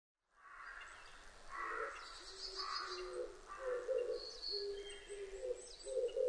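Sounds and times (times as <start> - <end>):
Oriental turtle dove cooing: 1.6 - 6.2
birds chirping and whistling: 1.9 - 6.2.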